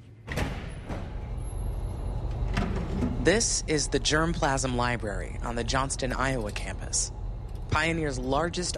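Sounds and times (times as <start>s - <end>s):
low steady hum: 0.0s - 8.7s
heavy secure door opening with a mechanical clunk: 0.2s - 3.3s
speech: 3.2s - 8.7s.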